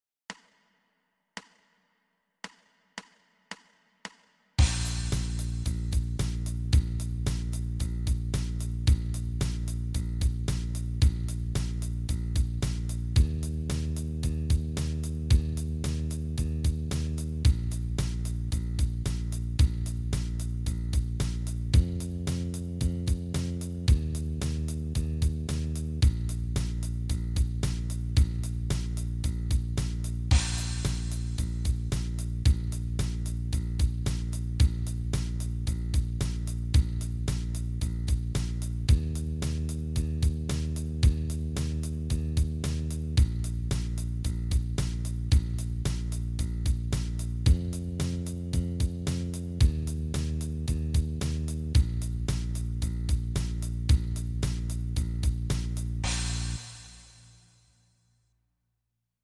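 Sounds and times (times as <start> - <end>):
blues bass startup in B flat: 4.6 - 57.0.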